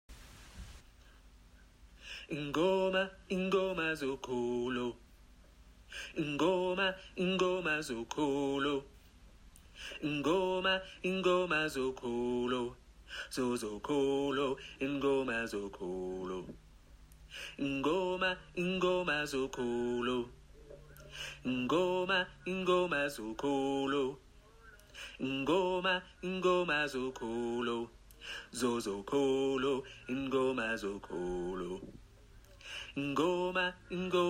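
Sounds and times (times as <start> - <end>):
gospel choir singing, alto voices: 2.3 - 5.0, 6.2 - 8.8, 10.0 - 16.6, 17.6 - 20.3, 21.2 - 24.2, 25.2 - 27.9, 28.5 - 32.0, 32.9 - 34.2.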